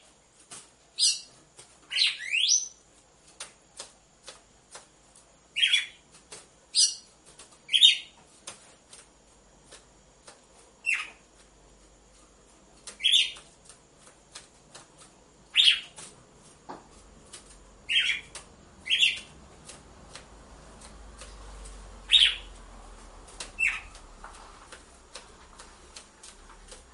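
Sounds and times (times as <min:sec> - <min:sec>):
female red-cowled cardinal song of harsh chirped notes: 0:01.9 - 0:02.8, 0:10.8 - 0:11.2, 0:13.0 - 0:13.4, 0:15.5 - 0:15.9, 0:17.9 - 0:19.3, 0:22.1 - 0:22.5, 0:23.6 - 0:24.0.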